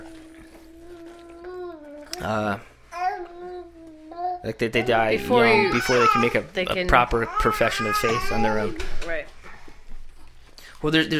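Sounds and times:
baby babbling: 0.0s - 2.3s, 2.9s - 6.4s, 7.3s - 8.8s
speech: 2.2s - 2.7s, 4.4s - 9.3s, 10.8s - 11.1s.

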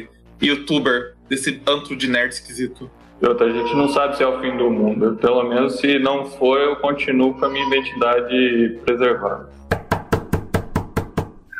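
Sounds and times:
speech: 0.0s - 9.6s
firm knocking on a door: 9.7s - 11.4s.

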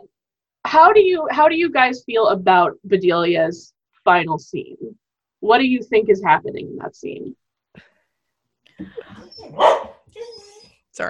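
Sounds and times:
speech: 0.7s - 7.9s, 8.8s - 11.0s
dog barking: 9.4s - 10.1s.

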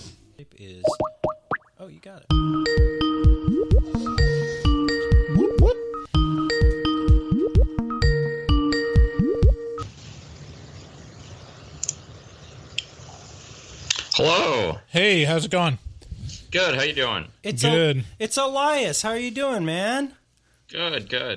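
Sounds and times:
speech: 0.4s - 1.2s, 1.8s - 4.3s, 14.2s - 15.8s, 16.5s - 21.3s
chiming phone ringtone while a phone call connects: 2.4s - 9.8s.

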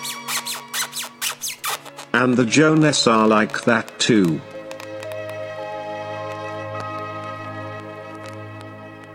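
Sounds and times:
loud shrill squeaks with sliding pitch: 0.0s - 2.2s
speech: 2.2s - 4.5s.

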